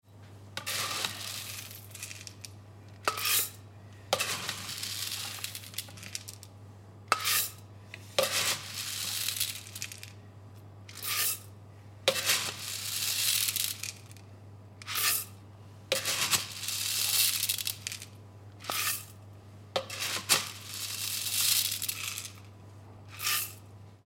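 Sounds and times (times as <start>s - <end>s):
coffee beans: 0.6s - 6.5s, 7.1s - 10.2s, 10.8s - 11.5s, 12.1s - 14.2s, 14.8s - 19.2s, 19.8s - 23.7s.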